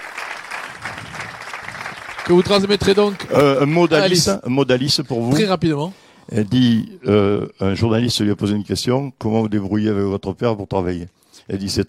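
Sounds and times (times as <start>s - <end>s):
audience applause: 0.0s - 4.3s
speech: 2.3s - 11.8s.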